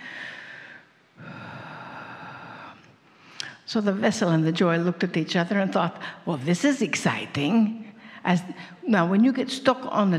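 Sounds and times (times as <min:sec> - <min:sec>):
deep breath: 0:00.0 - 0:03.5
speech: 0:03.7 - 0:10.1.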